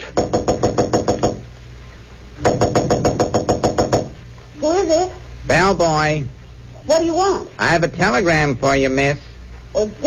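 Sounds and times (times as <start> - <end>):
rapid knocking on a hotel room door: 0.1 - 1.4, 2.4 - 4.2
speech: 4.9 - 10.0.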